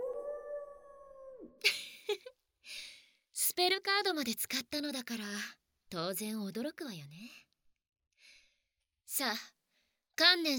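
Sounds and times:
wolf howling: 0:00.0 - 0:01.6
speech: 0:03.6 - 0:07.4, 0:09.1 - 0:09.6, 0:10.2 - 0:10.5.

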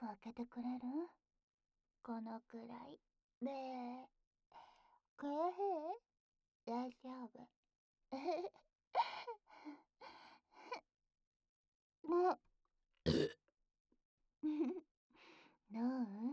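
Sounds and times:
speech: 0:00.0 - 0:01.2, 0:02.0 - 0:04.6, 0:05.2 - 0:06.1, 0:06.7 - 0:10.2, 0:12.0 - 0:13.4, 0:14.4 - 0:14.9, 0:15.7 - 0:16.3
short throaty vocal noises: 0:13.1 - 0:13.3
voiced burp: 0:13.1 - 0:13.4.

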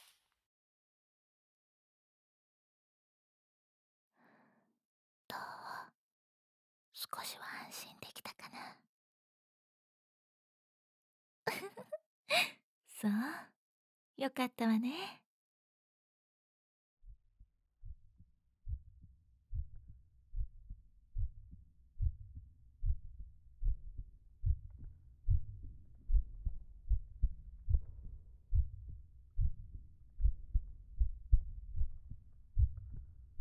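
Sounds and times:
speech: 0:07.1 - 0:08.8, 0:13.0 - 0:13.5, 0:14.2 - 0:15.2
heartbeat thumping: 0:17.1 - 0:33.3.

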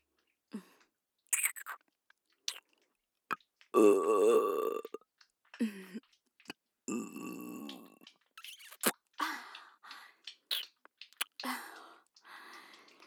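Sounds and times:
breathy sounds: 0:00.5 - 0:00.9, 0:09.2 - 0:10.2, 0:11.4 - 0:13.0
soft wet mouth clicks: 0:01.3 - 0:05.3, 0:06.4 - 0:09.2, 0:09.9 - 0:13.0
person burping: 0:03.8 - 0:05.0, 0:06.9 - 0:08.0.

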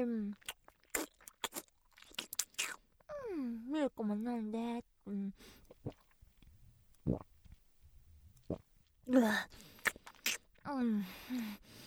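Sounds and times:
person chewing egg noisily with open-mouthed smacks: 0:00.3 - 0:02.9, 0:05.6 - 0:07.6, 0:09.6 - 0:10.6
speech: 0:03.9 - 0:06.0, 0:07.1 - 0:07.3, 0:09.1 - 0:09.6, 0:10.7 - 0:11.6.

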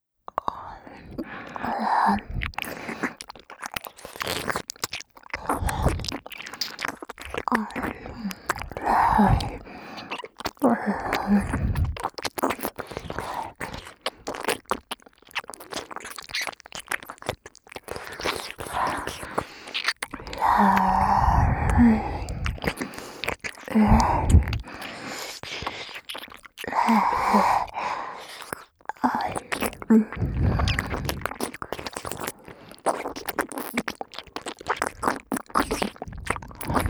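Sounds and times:
ASMR ear licking sounds: 0:01.0 - 0:36.8.

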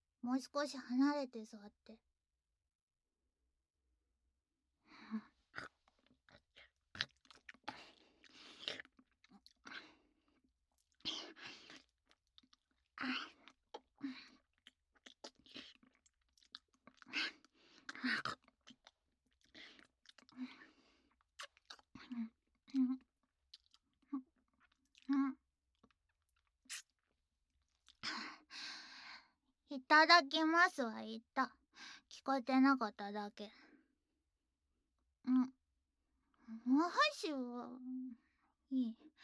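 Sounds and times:
speech: 0:00.2 - 0:02.1, 0:05.1 - 0:05.7, 0:30.0 - 0:31.6, 0:32.2 - 0:33.6, 0:36.5 - 0:39.2
chewing and mouth noises while eating dinner: 0:05.6 - 0:09.9, 0:10.8 - 0:27.1.

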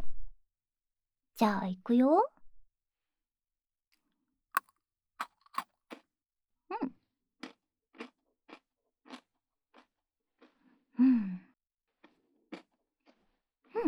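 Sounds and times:
speech: 0:01.4 - 0:02.4
crunching chocolate-coated Pocky biscuit sticks: 0:04.6 - 0:05.6.

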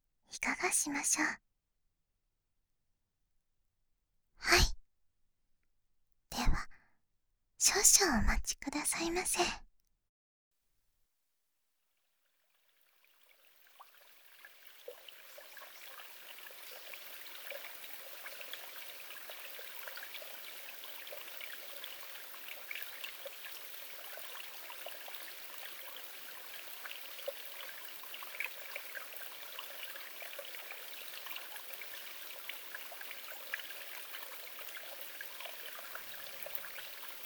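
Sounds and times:
speech: 0:00.3 - 0:01.5, 0:07.6 - 0:09.6
gentle babbling stream: 0:00.4 - 0:01.4, 0:06.4 - 0:06.7, 0:07.6 - 0:09.6, 0:12.5 - 0:37.2.

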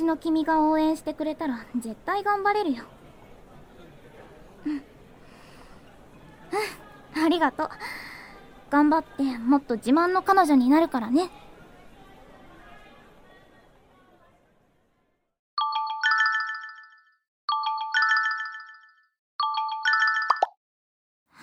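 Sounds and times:
murmured chatter: 0:00.0 - 0:15.2
speech: 0:00.1 - 0:03.0, 0:04.6 - 0:04.9, 0:06.5 - 0:08.1, 0:08.7 - 0:11.4
mobile phone ringtone with bright electronic melody: 0:15.6 - 0:20.6.

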